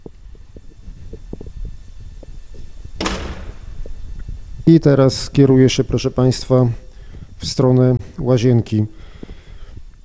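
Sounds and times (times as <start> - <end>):
steady hum: 0.0 - 10.0
door latch click: 3.0 - 3.8
door opening swoosh: 3.0 - 3.9
speech: 4.7 - 6.8, 7.4 - 9.0.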